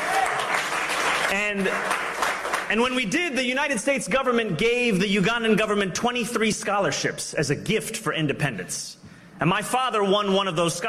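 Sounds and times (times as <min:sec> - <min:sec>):
audience applause: 0:00.0 - 0:02.7
speech: 0:01.3 - 0:02.1, 0:02.7 - 0:10.8.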